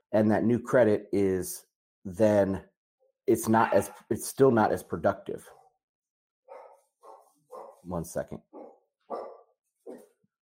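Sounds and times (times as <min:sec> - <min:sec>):
speech: 0:00.1 - 0:02.7, 0:03.3 - 0:05.6, 0:07.8 - 0:08.5
dog barking: 0:03.6 - 0:04.0, 0:06.5 - 0:07.9, 0:08.5 - 0:10.2.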